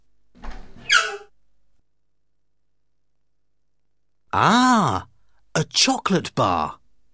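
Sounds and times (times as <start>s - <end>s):
cupboard door short rising squeak: 0.4s - 1.4s
speech: 4.4s - 5.1s, 5.7s - 6.8s.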